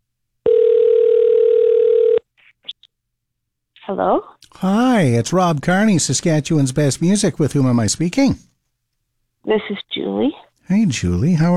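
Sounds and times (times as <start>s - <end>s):
telephone dial tone while placing a call: 0.5s - 2.2s
speech: 3.9s - 8.5s, 9.4s - 11.5s.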